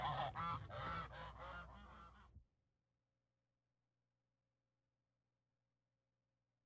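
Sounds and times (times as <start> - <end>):
goose honks: 0.0 - 2.3.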